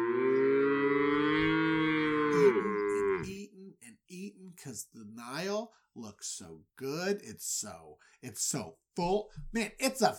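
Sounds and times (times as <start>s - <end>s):
person imitating a cow mooing: 0.0s - 3.4s
speech: 6.0s - 10.1s.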